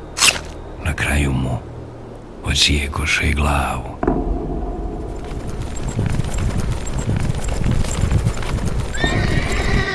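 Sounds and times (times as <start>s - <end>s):
speech: 1.1s - 1.7s, 2.4s - 4.4s
riderless horse hooves clip-clopping: 5.0s - 9.9s
riderless horse whinnying: 9.0s - 9.9s.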